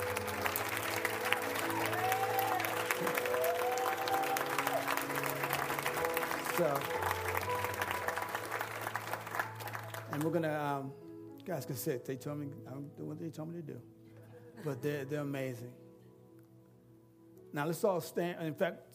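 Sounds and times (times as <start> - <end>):
church audience applauding: 0.0 - 10.5
sustained keyboard chords: 0.0 - 13.9
speech: 6.6 - 7.0, 10.2 - 14.0, 14.6 - 15.8, 17.5 - 18.9.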